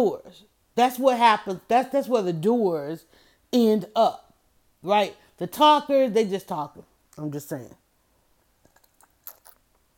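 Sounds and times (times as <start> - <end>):
speech: 0.0 - 4.2, 4.8 - 7.8
sipping of lemonade: 8.6 - 9.8.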